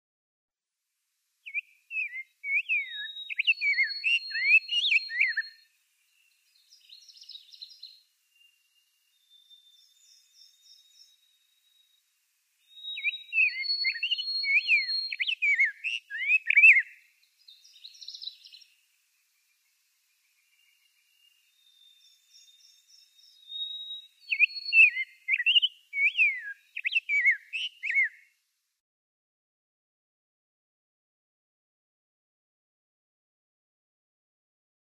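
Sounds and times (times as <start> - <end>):
Rose-breasted Grosbeak singing: 1.4 - 28.3.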